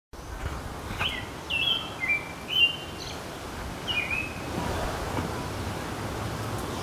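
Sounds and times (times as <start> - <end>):
constant low background hiss and rumble: 0.2 - 6.8
songbird whistling in a city: 1.0 - 3.2, 3.9 - 4.5.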